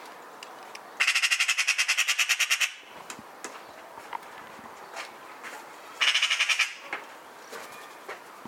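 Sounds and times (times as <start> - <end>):
Eurasian magpie Pica pica harsh rattling chatter: 1.0 - 2.8, 6.0 - 6.8.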